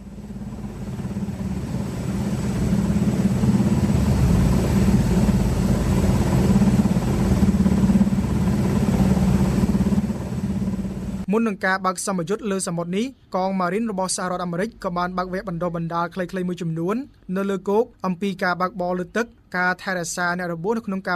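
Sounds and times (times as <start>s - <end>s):
military helicopter engine drone before a joint naval exercise: 0.0s - 11.3s
speech: 11.4s - 21.1s.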